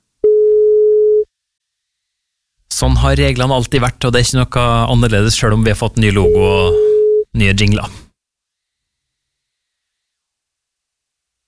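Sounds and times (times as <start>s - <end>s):
phone call ringback tone: 0.2s - 1.3s, 6.2s - 7.3s
speech: 2.8s - 8.0s.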